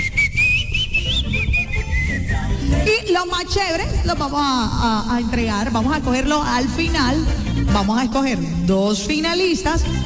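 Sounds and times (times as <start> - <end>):
person whistling a song melody: 0.0 - 2.6
speech: 3.1 - 10.0.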